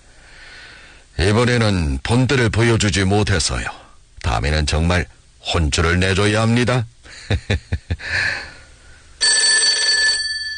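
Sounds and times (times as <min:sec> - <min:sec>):
speech: 0:01.2 - 0:03.8, 0:04.4 - 0:08.5
telephone bell ringing with a call from the operations room: 0:09.2 - 0:10.5.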